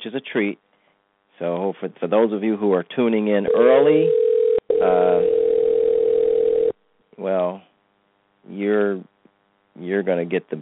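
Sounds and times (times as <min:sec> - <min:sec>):
speech: 0:00.0 - 0:00.7, 0:01.4 - 0:05.4, 0:07.2 - 0:07.7, 0:08.4 - 0:09.1, 0:09.8 - 0:10.5
telephone dial tone: 0:03.5 - 0:06.8.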